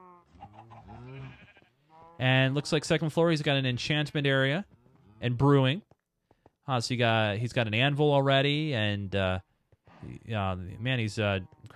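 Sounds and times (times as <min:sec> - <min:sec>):
cows mooing on a cow farm at the back of a building, game sound effects: 0:00.0 - 0:02.6
speech: 0:02.2 - 0:05.9, 0:06.7 - 0:11.6.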